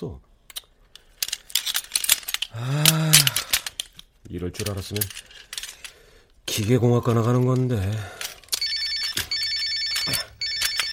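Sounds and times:
speech: 0.0 - 0.3, 2.6 - 3.5, 4.3 - 5.5, 6.6 - 8.2
telephone ringing in trilling bursts: 8.5 - 10.9.

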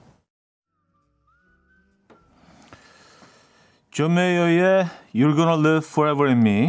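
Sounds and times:
soft wistful whistled melody: 0.6 - 3.2
gentle guitar-backed music: 0.7 - 3.3
speech: 4.0 - 6.6.

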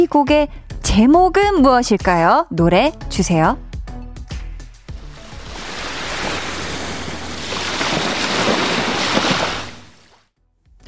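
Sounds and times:
speech: 0.0 - 3.6
ocean surf waves in a song intro: 4.9 - 10.2.

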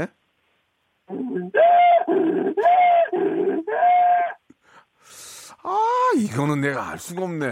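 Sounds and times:
speech: 0.0 - 0.2, 1.1 - 4.2, 5.1 - 7.4
donkey braying: 1.1 - 4.5.

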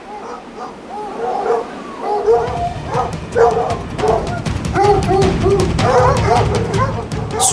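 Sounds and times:
large black dog barking while running down a mountain: 0.0 - 7.5
low rumbling noise: 2.3 - 7.5.

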